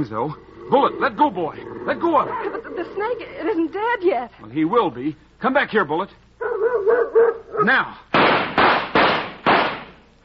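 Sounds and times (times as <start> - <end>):
speech: 0.0 - 6.2, 6.8 - 8.1
gunshots fired at a rattlesnake: 8.1 - 10.0.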